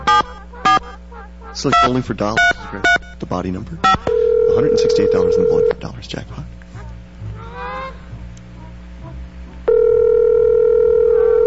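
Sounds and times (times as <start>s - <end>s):
honking goose-like calls: 0.0s - 5.6s, 6.6s - 9.7s
low rumble: 0.0s - 11.4s
speech: 1.6s - 6.6s
telephone ring tone from a call during a live radio broadcast: 4.0s - 5.8s, 9.7s - 11.4s.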